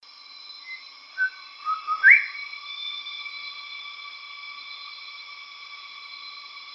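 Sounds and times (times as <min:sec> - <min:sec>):
bird whistles in Papua New Guinea: 0:00.7 - 0:03.1.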